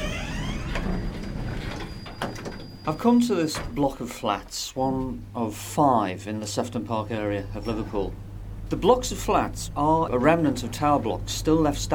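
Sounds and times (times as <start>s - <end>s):
lift doors sliding shut in a 1950s–60s tower block of flats in Liverpool: 0.0s - 3.8s
speech: 2.9s - 11.9s.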